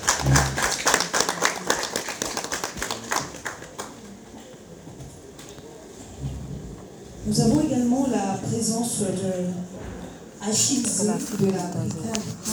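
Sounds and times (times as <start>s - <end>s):
audience applauding as guests are introduced at an event: 0.0s - 4.2s
speech: 7.3s - 12.5s.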